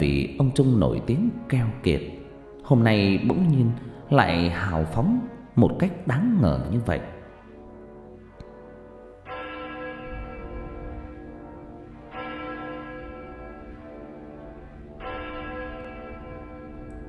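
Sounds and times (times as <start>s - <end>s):
church bell striking midnight: 0.0s - 17.0s
speech: 0.3s - 7.2s.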